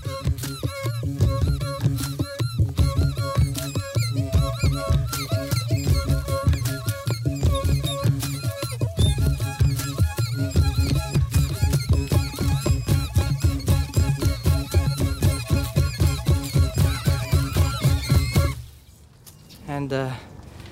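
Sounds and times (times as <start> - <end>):
rhythmic wooden knocks and plucks on a living tree: 0.0 - 18.6
squeaky honking bowed tones played on a living tree: 0.0 - 18.7
faint rustling: 18.6 - 20.7.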